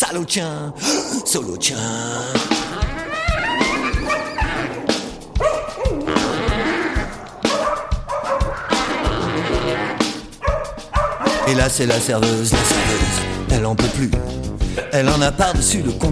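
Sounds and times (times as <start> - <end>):
speech: 0.0 - 3.0, 11.5 - 16.0
dog yelping after being kicked: 2.6 - 11.6.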